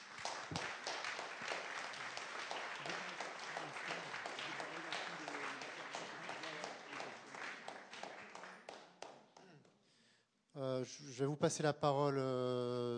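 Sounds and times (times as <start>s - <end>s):
audience applauding: 0.0s - 9.2s
speech: 10.6s - 12.9s.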